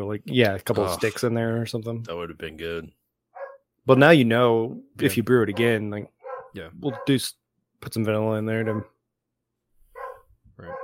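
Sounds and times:
speech: 0.0 - 3.0, 3.9 - 8.9
dogs barking: 3.4 - 3.7, 5.5 - 7.2, 9.9 - 10.8.

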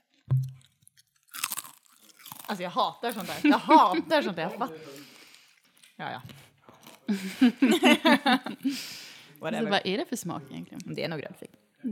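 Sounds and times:
crunchy sour-cream-flavored snack being bitten and chewed: 0.6 - 3.3
speech: 2.5 - 5.0, 6.0 - 6.4, 7.1 - 11.8
laughter: 3.1 - 4.5, 7.1 - 8.9.

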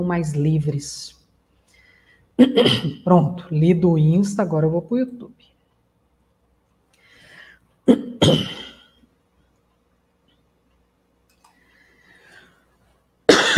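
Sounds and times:
speech: 0.0 - 1.2, 2.4 - 5.5, 7.9 - 8.6
person with a tickle in the throat coughing: 2.4 - 3.0, 7.9 - 9.0, 13.3 - 13.5.

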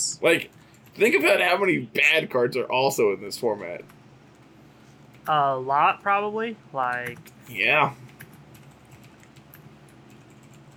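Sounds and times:
speech: 0.1 - 4.0, 5.3 - 8.1
typing on a computer keyboard: 7.0 - 7.4, 8.1 - 10.7.

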